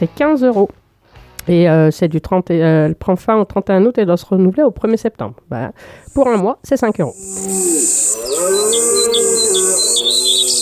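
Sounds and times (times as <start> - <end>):
speech: 0.0 - 0.8, 1.5 - 10.6
birds chirping: 7.1 - 10.6
long low lowing call: 7.2 - 10.6.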